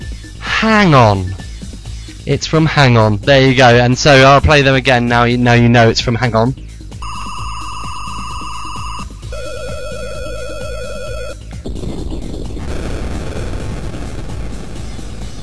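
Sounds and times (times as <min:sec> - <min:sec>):
speech: 0:00.6 - 0:01.4, 0:02.3 - 0:06.7
retro video game electronic beeping tones: 0:07.0 - 0:09.1
retro video game crackling explosion sound effect: 0:11.6 - 0:15.4.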